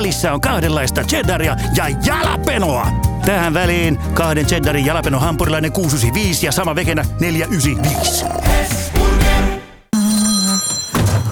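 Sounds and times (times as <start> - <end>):
speech: 0.1 - 9.0
phone ringtone with a bright electronic melody: 10.0 - 11.3.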